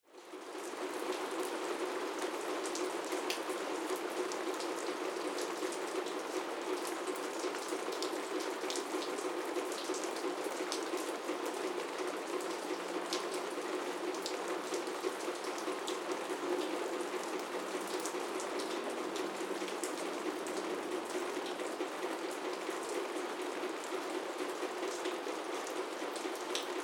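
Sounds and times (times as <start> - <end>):
rain on a roof heard from inside a loft: 0.0 - 26.8.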